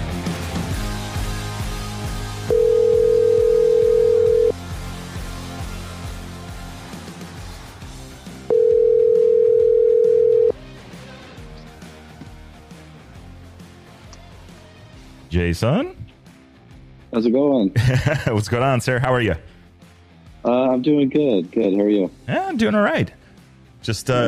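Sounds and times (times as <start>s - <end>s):
low music: 0.0s - 24.2s
phone ringback tone as a call is placed: 2.5s - 4.6s, 8.5s - 10.6s
speech: 15.4s - 16.0s, 17.2s - 19.5s, 20.4s - 23.2s, 23.8s - 24.2s
laughter: 17.8s - 18.6s.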